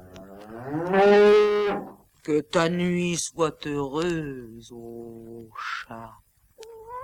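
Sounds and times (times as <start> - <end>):
wild cow mooing: 0.0 - 2.0
speech: 2.3 - 6.2.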